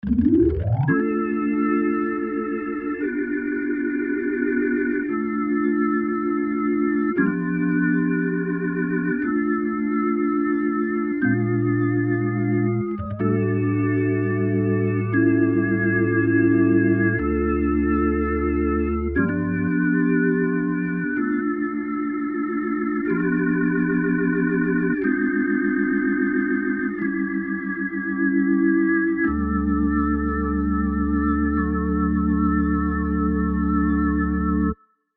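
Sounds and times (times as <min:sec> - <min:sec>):
electric organ with vibrato: 0:00.0 - 0:34.8.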